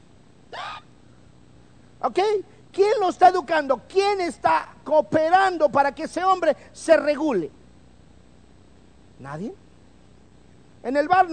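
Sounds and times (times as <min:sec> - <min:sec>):
voice imitating a hiccup: 0:00.5 - 0:00.9
speech: 0:02.1 - 0:07.6, 0:09.2 - 0:09.6, 0:10.8 - 0:11.3.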